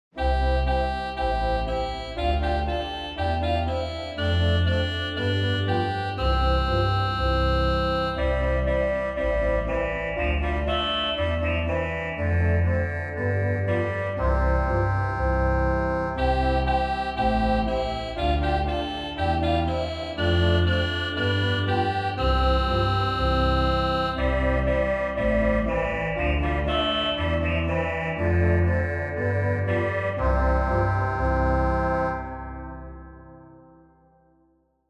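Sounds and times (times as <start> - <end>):
reed organ: 0.2 - 33.9.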